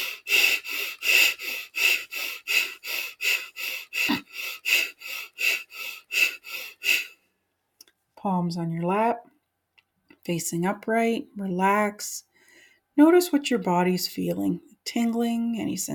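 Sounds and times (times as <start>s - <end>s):
short forceful breaths in a seated breathing exercise: 0.0s - 7.3s
speech: 8.2s - 9.3s, 10.3s - 12.3s, 13.0s - 15.9s.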